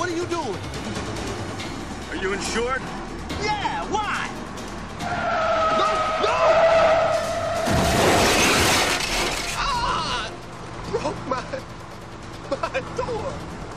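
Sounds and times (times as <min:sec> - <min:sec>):
car engine noise: 0:00.0 - 0:13.7
speech: 0:02.2 - 0:04.4
Jaguar car tires screeching in a skid while chasing a bus: 0:05.0 - 0:10.3
car crash with shattering debris: 0:06.5 - 0:10.1.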